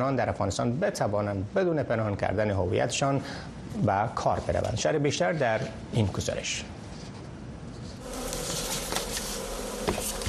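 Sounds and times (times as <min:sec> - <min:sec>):
speech: 0:00.0 - 0:06.8
honeybees buzzing around hives in Herat province, Afghanistan: 0:08.0 - 0:10.2
individual bees flying past: 0:08.0 - 0:10.2.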